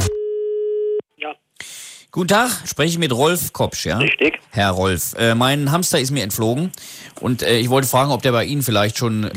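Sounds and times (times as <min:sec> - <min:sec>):
telephone line tone as a call is placed: 0:00.1 - 0:01.3
speech: 0:02.1 - 0:09.3.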